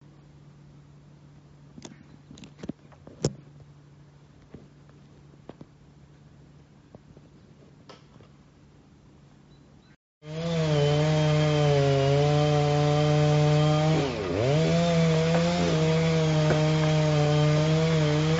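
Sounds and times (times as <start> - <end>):
low steady hum: 0.0 - 10.0
chainsaw felling a 21 metre tall fir by a golf course: 10.2 - 18.3.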